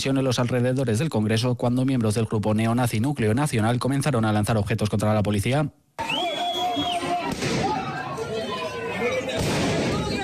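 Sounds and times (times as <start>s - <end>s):
speech: 0.0s - 6.2s
high whistle: 6.0s - 7.2s
noisy crowd of protesters shouting near the Congress in Madrid: 6.0s - 10.2s
police firing sharp gunshots into the air to disperse protesters: 7.2s - 8.0s, 9.3s - 10.2s.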